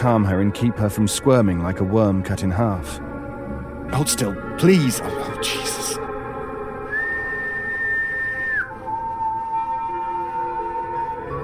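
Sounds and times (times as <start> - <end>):
speech: 0.0 - 3.1, 3.9 - 6.0
whistling: 6.9 - 11.4.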